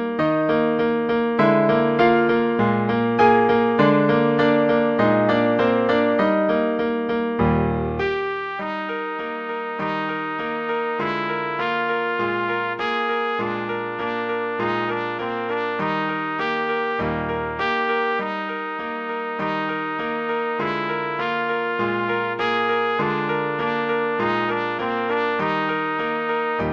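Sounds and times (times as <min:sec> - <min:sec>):
trumpet recital piece, bourree: 0:00.2 - 0:26.7.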